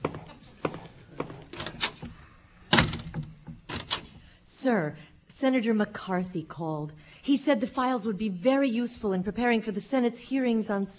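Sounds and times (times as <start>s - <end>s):
door banging closed: 1.6s - 4.2s
door latch clicks: 1.6s - 4.2s
speech: 4.6s - 10.9s.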